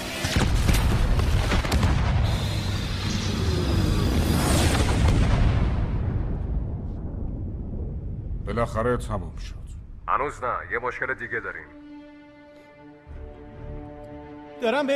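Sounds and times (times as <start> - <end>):
bomb explosions booming: 0.2 - 10.0
speech: 8.6 - 11.8, 14.6 - 14.9.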